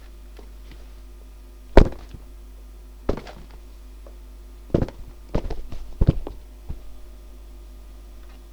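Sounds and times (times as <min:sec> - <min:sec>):
thuds: 0:01.7 - 0:02.3, 0:03.1 - 0:07.1.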